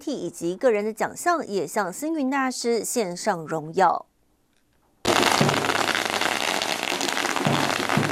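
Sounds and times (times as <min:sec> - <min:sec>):
speech: 0:00.0 - 0:04.1
long string of firecrackers exploding: 0:05.0 - 0:08.1.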